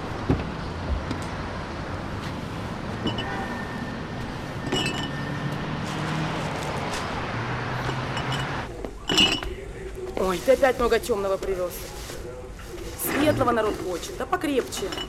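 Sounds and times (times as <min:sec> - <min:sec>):
noise: 0:00.0 - 0:15.0
glass beer bottles clinking in a crate set down on a shop counter: 0:03.0 - 0:03.6, 0:04.6 - 0:05.9, 0:07.8 - 0:10.9, 0:13.0 - 0:15.0
speech: 0:10.3 - 0:12.0, 0:13.2 - 0:15.0.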